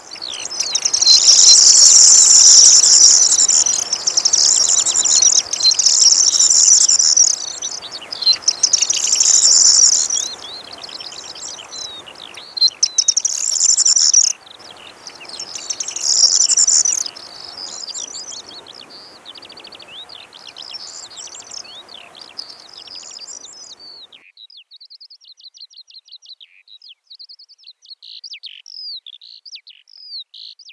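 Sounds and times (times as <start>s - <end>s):
corn bunting singing: 0.0s - 24.3s.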